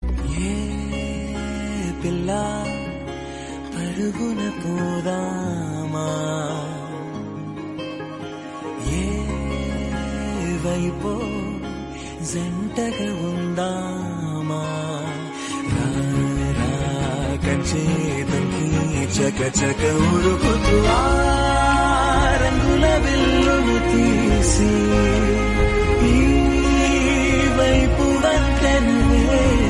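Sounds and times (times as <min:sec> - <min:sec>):
Telugu song: 0:00.2 - 0:29.6.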